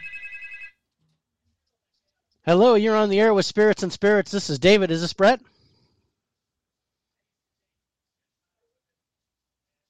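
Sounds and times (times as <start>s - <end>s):
phone ringtone trilling in warbling pulses: 0.0s - 0.8s
speech: 2.4s - 5.5s.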